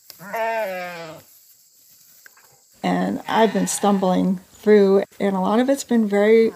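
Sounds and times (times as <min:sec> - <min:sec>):
speech: 0:00.2 - 0:00.8, 0:03.1 - 0:06.5
gray and black Romanov sheep bleating on a farm in Randolph County West Virginia: 0:00.2 - 0:01.2, 0:03.2 - 0:04.2.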